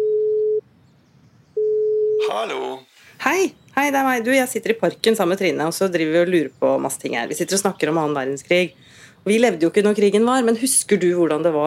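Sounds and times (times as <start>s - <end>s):
telephone ringback tone while placing a call: 0.0s - 0.6s, 1.6s - 2.2s
speech: 2.3s - 11.6s.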